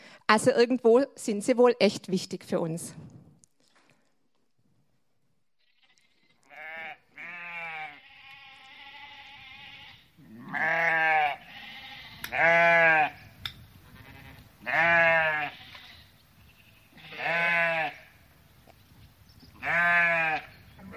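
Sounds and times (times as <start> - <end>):
speech: 0.3 - 3.1
sheep bleating: 5.6 - 13.2, 13.8 - 18.1, 19.6 - 20.9.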